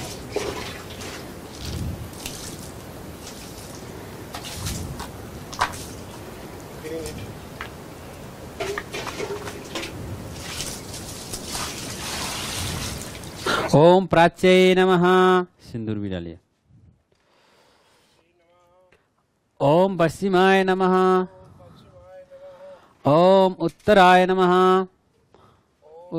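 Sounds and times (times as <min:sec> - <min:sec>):
water poured during a Hindu puja ritual: 0:00.0 - 0:05.0, 0:08.6 - 0:13.4
speech: 0:13.7 - 0:16.4, 0:19.6 - 0:21.4, 0:23.0 - 0:24.9.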